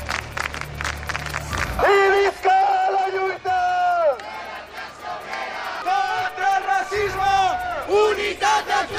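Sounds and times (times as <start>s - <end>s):
protest crowd cheering: 0.0s - 8.9s
protest march crowd chanting slogans against war and genocide: 2.8s - 8.9s.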